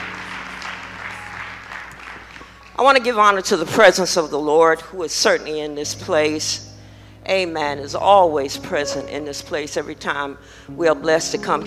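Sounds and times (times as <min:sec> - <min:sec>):
congregation clapping hands during a church service: 0:00.0 - 0:03.4
speech: 0:02.8 - 0:06.7, 0:07.3 - 0:11.6
faint low hum: 0:05.4 - 0:11.6.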